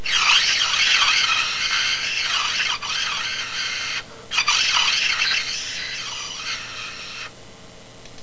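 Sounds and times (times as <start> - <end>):
plastic straw panpipes: 0.0 - 7.3.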